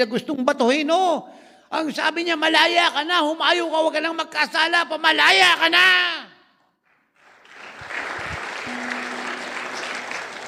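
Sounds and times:
speech: 0.0 - 6.3
audience applause of many hands: 7.2 - 10.4.

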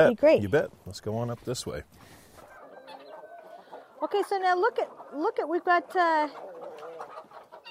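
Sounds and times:
speech: 0.0 - 2.2, 4.0 - 6.5
rooster clucking: 2.4 - 7.6.

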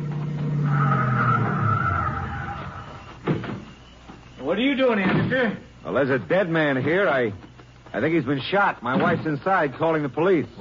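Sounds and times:
tires skidding as cars pull up: 0.0 - 3.2
car engine rumble: 0.0 - 3.8
speech: 4.5 - 10.6.

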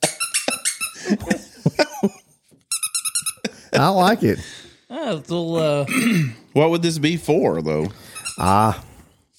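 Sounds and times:
squeaky dog toy being squeezed: 0.0 - 1.0, 2.7 - 3.5, 8.1 - 8.7
speech: 1.1 - 1.4, 3.8 - 9.3.

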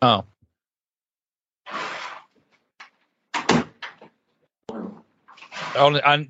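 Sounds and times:
speech: 0.0 - 0.3, 5.8 - 6.2
door closing thud: 3.4 - 4.1.

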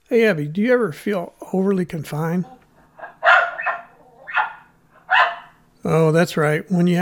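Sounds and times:
speech: 0.1 - 2.6, 5.8 - 7.0
dog barking: 2.9 - 5.6.

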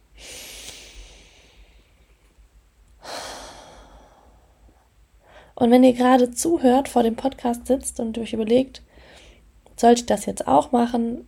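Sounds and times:
slow deep breath in and out: 0.1 - 2.4, 3.0 - 5.6, 8.9 - 9.5
speech: 5.6 - 8.9, 9.8 - 11.2.

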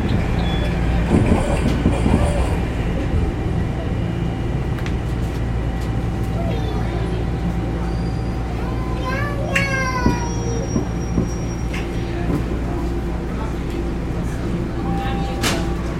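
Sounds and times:
Toronto TTC subway train rumbling along the tracks between stations: 0.0 - 15.9.

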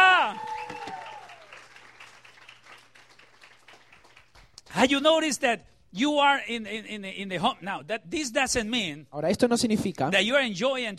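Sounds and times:
person shouting with joy: 0.0 - 1.5
audience clapping and cheering: 0.0 - 4.9
speech: 4.8 - 10.9.

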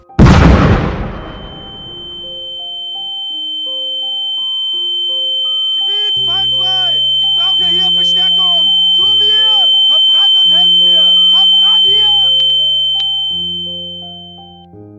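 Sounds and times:
tank shell explosion on a calm cold night: 0.2 - 2.2
thin high ringing tone: 1.0 - 14.7
voices: 5.8 - 13.0.

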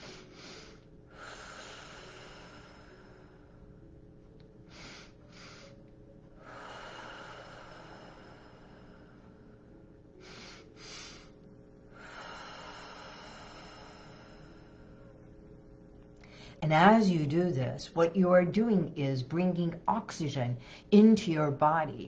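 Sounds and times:
deep slow breaths in a guided breathing exercise: 0.0 - 3.9, 4.6 - 15.2, 16.2 - 16.6, 20.6 - 20.9
low steady hum: 0.0 - 22.0
speech: 16.6 - 22.0.

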